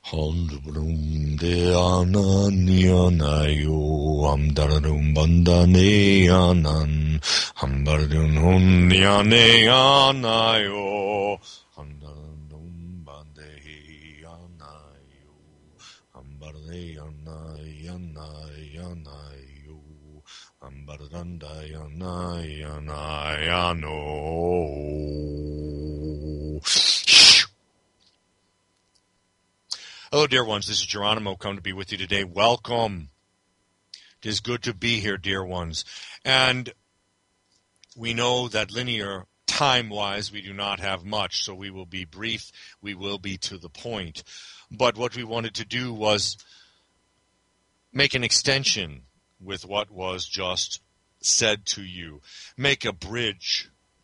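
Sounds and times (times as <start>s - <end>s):
single voice singing sustained wordless meditative tones: 0.0s - 27.5s
speech: 0.1s - 12.0s, 20.6s - 25.4s, 30.1s - 33.1s, 34.2s - 36.8s, 38.0s - 46.6s, 47.9s - 53.7s.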